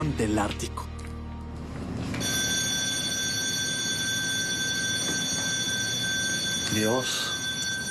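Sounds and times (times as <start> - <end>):
speech: 0.2 - 0.9, 6.7 - 7.4
continuous electronic alarm tone: 2.2 - 7.8.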